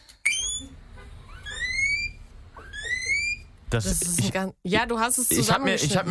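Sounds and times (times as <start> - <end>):
guinea pig squealing: 0.3 - 3.5
speech: 3.7 - 6.0.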